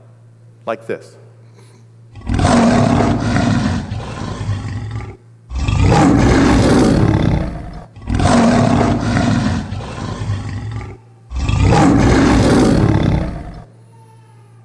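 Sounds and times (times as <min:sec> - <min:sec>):
speech: 0:00.7 - 0:01.2
lion roaring: 0:02.1 - 0:13.7.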